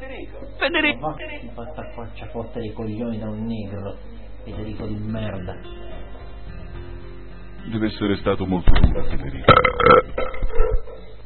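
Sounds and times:
speech: 0.3 - 5.9, 7.6 - 10.8
loud drawn-out burp with a deep rumbling rasp: 9.5 - 10.8.

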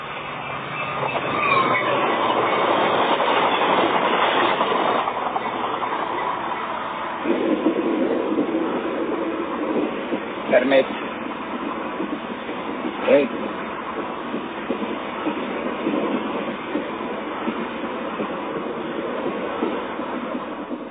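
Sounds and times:
brief high squeal: 0.0 - 7.4
rumble and rattle inside a moving train carriage: 0.0 - 20.8.

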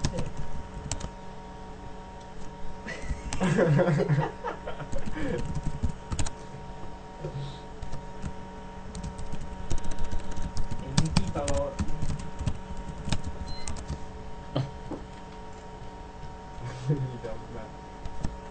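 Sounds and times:
low electrical hum: 0.0 - 18.4
typing a document on a computer keyboard: 0.1 - 1.1, 5.0 - 6.3, 8.9 - 13.9
laughter: 2.9 - 5.5
speech: 3.5 - 4.4.

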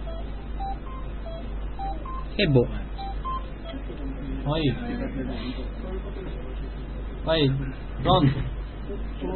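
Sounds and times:
touch-tone beeps as a number is dialed on a phone: 0.1 - 3.8
speech: 2.4 - 2.9, 4.5 - 9.3.

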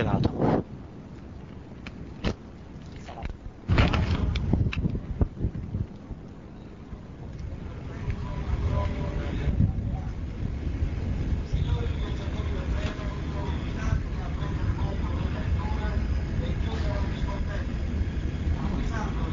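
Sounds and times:
strong gusts of wind buffeting the microphone: 0.0 - 19.3
ship engine room machinery droning: 6.1 - 19.3.

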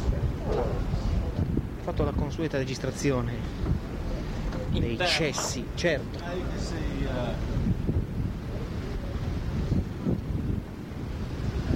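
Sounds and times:
gusty wind buffeting the microphone: 0.0 - 11.7
sea surf roaring: 0.0 - 11.7
speech: 1.9 - 3.9, 4.7 - 7.6.

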